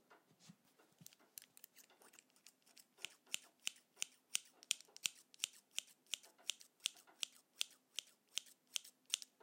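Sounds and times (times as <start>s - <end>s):
scissors cutting paper: 1.0s - 9.3s.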